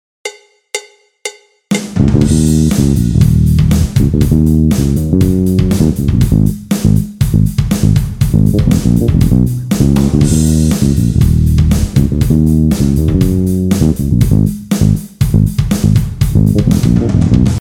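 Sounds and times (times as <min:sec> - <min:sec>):
heavy drums playing behind the beat: 0:00.3 - 0:17.5.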